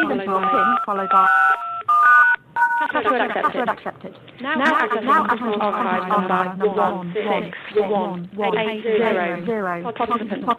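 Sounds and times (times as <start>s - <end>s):
speech: 0.0s - 1.7s, 2.8s - 10.5s
telephone keypad tones entering a PIN for a phone conference: 0.0s - 3.2s.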